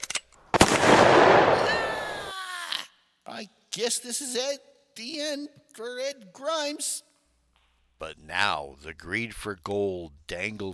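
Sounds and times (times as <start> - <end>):
gunshot in a radio drama aboard a ship: 0.5 - 1.7
speech: 3.4 - 7.1, 8.0 - 10.7.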